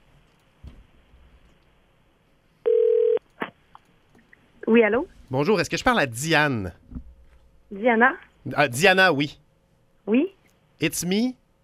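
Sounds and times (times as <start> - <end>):
telephone ringing on the line: 2.6 - 3.2
speech: 4.7 - 6.8, 7.7 - 9.4, 10.8 - 11.4.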